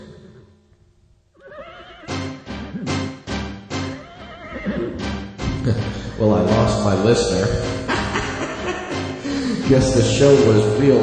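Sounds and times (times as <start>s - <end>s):
horse neighing: 1.4s - 3.2s, 3.8s - 5.2s
laughter: 5.4s - 11.0s
speech: 6.2s - 7.9s, 9.7s - 11.0s.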